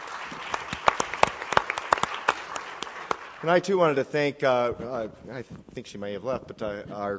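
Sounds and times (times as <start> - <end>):
audience applauding for a panel: 0.0 - 5.0
speech: 3.4 - 7.1.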